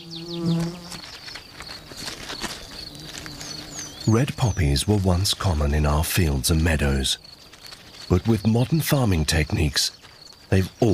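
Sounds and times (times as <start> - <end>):
mason bee buzzing: 0.0 - 4.1
outdoor ambience: 0.0 - 10.9
speech: 4.0 - 7.3, 8.1 - 10.9.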